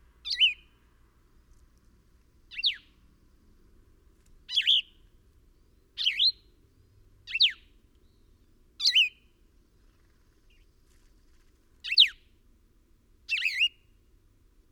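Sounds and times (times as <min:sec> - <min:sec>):
bird chirping: 0:00.2 - 0:00.8, 0:02.5 - 0:03.0, 0:04.5 - 0:05.0, 0:05.6 - 0:06.5, 0:07.3 - 0:09.2, 0:11.8 - 0:12.2, 0:13.3 - 0:14.0.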